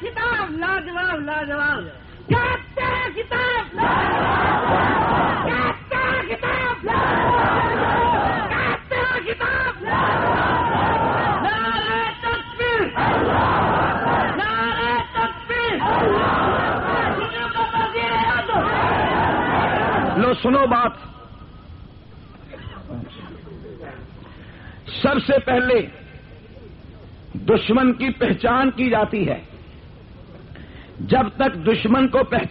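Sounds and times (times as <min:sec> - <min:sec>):
speech: 0:01.2 - 0:04.0, 0:20.4 - 0:21.0, 0:25.3 - 0:26.0, 0:27.5 - 0:29.5, 0:31.1 - 0:32.4
roaring crowd noise: 0:02.2 - 0:24.4
large crowd chanting slogans: 0:02.8 - 0:11.9, 0:12.8 - 0:20.3.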